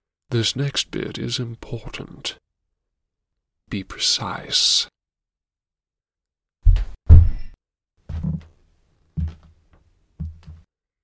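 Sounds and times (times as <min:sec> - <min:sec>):
speech: 0:00.3 - 0:02.5, 0:03.7 - 0:04.9
heavy footsteps through a floor: 0:06.6 - 0:07.5, 0:08.1 - 0:10.7.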